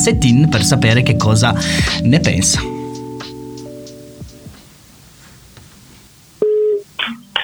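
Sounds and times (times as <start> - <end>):
speech: 0.0 - 2.8
electronic tones of a telephone call being placed: 2.7 - 7.4.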